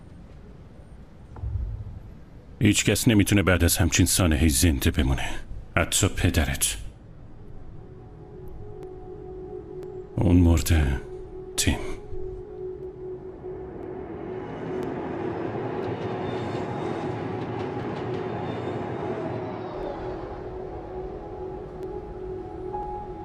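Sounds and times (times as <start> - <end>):
train rumbling along the rails: 1.4 - 2.8, 15.0 - 20.7
speech: 2.6 - 6.9, 10.2 - 11.9.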